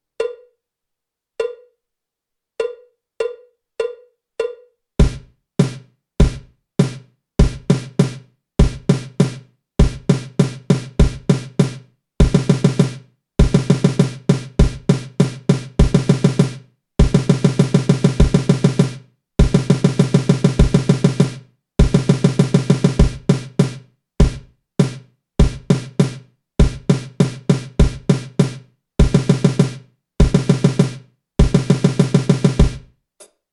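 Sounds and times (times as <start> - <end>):
drum kit warm-up solo: 5.0 - 32.9.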